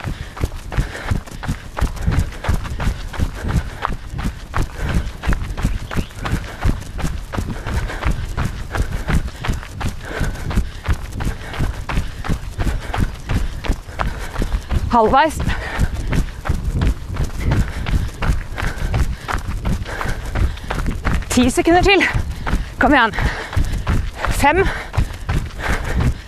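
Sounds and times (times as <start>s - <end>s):
people running footsteps during a timed interval workout: 0.0s - 26.2s
speech: 15.0s - 15.6s, 21.4s - 22.2s, 22.8s - 23.4s, 24.4s - 24.8s.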